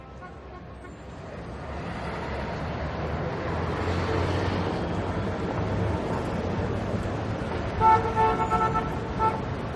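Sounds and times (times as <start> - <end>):
car horns honking in city traffic: 0.0 - 1.1, 7.8 - 9.7
dense city traffic rumbling: 0.0 - 9.7.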